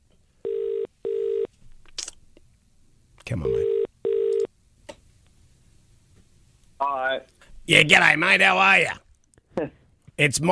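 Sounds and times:
speech: 0:03.3 - 0:03.8, 0:07.2 - 0:09.0, 0:09.6 - 0:10.5
electronic telephone dialing tones: 0:03.5 - 0:04.5.

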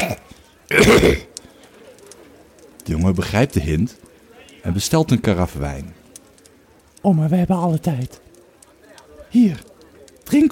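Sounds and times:
old soldier clearing his throat: 0:00.0 - 0:01.3
speech: 0:00.7 - 0:01.3, 0:02.9 - 0:06.0, 0:07.0 - 0:08.2, 0:09.3 - 0:09.7, 0:10.3 - 0:10.5.

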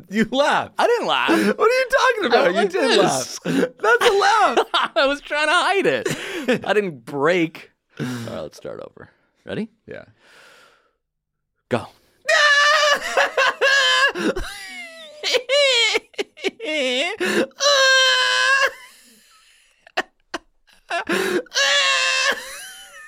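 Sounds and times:
speech: 0:00.0 - 0:10.4, 0:11.7 - 0:13.4, 0:14.2 - 0:14.6, 0:15.2 - 0:18.8, 0:20.9 - 0:22.4
person screaming: 0:01.0 - 0:04.6, 0:12.3 - 0:14.4, 0:16.6 - 0:18.8, 0:20.9 - 0:22.6
laughter: 0:01.0 - 0:06.6, 0:12.6 - 0:23.0.

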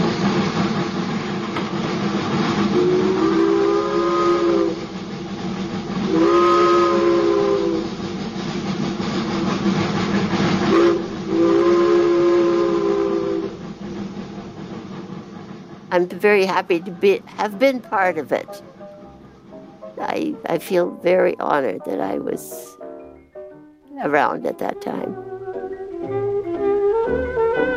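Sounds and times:
moving train rumbling: 0:00.0 - 0:27.7
train whistle blasts: 0:02.6 - 0:04.9, 0:06.1 - 0:07.9, 0:10.7 - 0:13.6
speech: 0:16.0 - 0:18.8, 0:20.0 - 0:22.8, 0:24.0 - 0:25.3.

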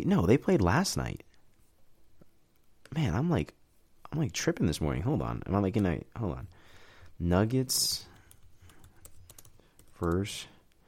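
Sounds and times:
speech: 0:00.0 - 0:01.2, 0:02.9 - 0:06.6, 0:07.2 - 0:08.1, 0:10.0 - 0:10.5
typing on a computer keyboard: 0:08.1 - 0:10.4.

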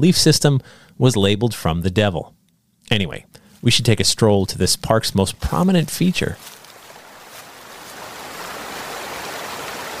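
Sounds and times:
speech: 0:00.0 - 0:06.6
waterfall cascading over granite rocks: 0:07.0 - 0:09.9.

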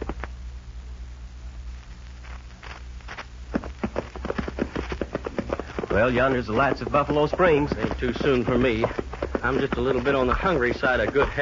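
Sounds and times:
low hum: 0:00.0 - 0:11.4
hooves of several horses with riders clip-clopping after dark: 0:03.5 - 0:11.4
speech: 0:06.0 - 0:11.4.

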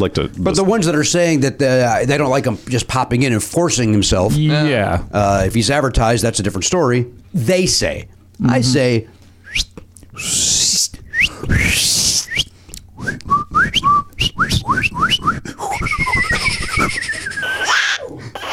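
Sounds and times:
speech: 0:00.0 - 0:15.4
several people whistling a bouncy tune: 0:09.4 - 0:17.6
laughter-like noise: 0:15.7 - 0:18.5.

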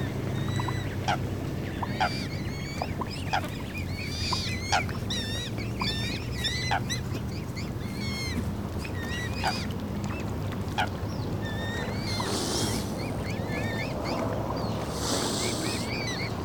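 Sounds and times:
low engine-like rumble: 0:00.0 - 0:16.4
young swans and ducks peeping and squeaking: 0:00.0 - 0:16.4
splashy hisses: 0:12.0 - 0:13.3, 0:14.8 - 0:16.1.

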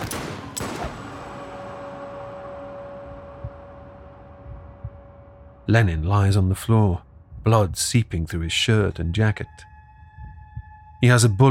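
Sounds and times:
loud gunshots: 0:00.0 - 0:01.4
low rumbling background: 0:00.0 - 0:11.4
lingering ringing tone: 0:01.3 - 0:05.7
speech: 0:05.7 - 0:09.7, 0:11.0 - 0:11.4.

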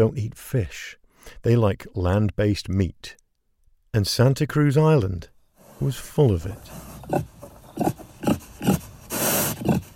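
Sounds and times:
speech: 0:00.0 - 0:03.2, 0:03.9 - 0:08.4
feral pig grunting: 0:06.5 - 0:09.9.

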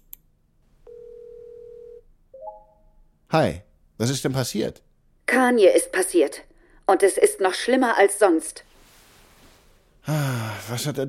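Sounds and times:
video call ringing on a computer: 0:00.9 - 0:03.0
speech: 0:03.3 - 0:08.7, 0:10.0 - 0:11.0.

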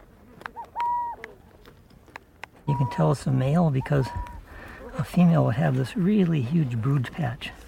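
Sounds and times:
burrowing owl calling: 0:00.5 - 0:01.4, 0:02.7 - 0:04.5
speech: 0:02.7 - 0:04.3, 0:05.0 - 0:07.6.

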